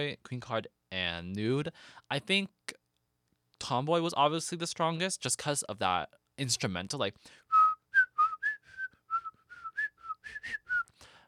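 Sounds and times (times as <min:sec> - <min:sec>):
speech: 0:00.0 - 0:02.6, 0:03.6 - 0:07.5
person whistling short breathy notes: 0:07.5 - 0:11.0.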